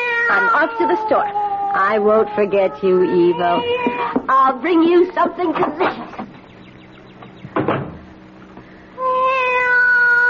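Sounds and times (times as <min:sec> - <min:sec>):
cat meowing: 0:00.0 - 0:04.2, 0:09.0 - 0:10.2
speech: 0:00.3 - 0:06.2
clattering bump of a cupboard or door: 0:07.2 - 0:08.1.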